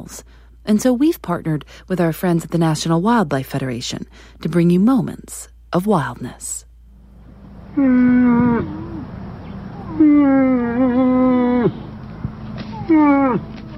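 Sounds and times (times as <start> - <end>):
speech: 0.0 - 6.6, 7.8 - 8.8, 11.6 - 11.8, 12.9 - 13.5
faint outdoor background: 0.0 - 13.7
female moose calling: 7.6 - 12.1.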